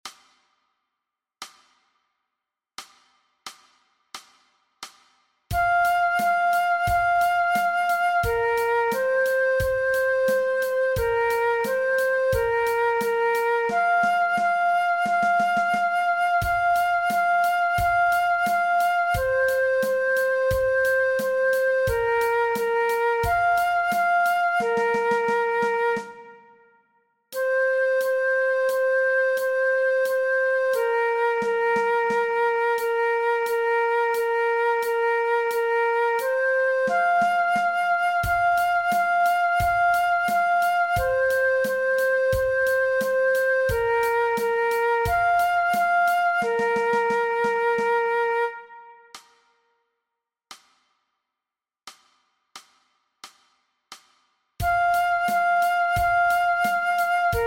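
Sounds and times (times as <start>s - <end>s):
transverse flute playing along: 5.5s - 26.8s, 27.4s - 49.2s, 54.6s - 57.4s.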